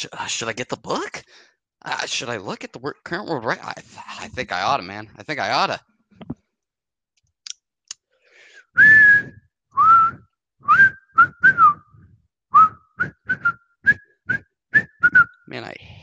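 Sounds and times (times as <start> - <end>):
speech: 0.0 - 5.9, 8.8 - 11.6, 15.5 - 16.0
person whistling a tune: 8.6 - 15.4.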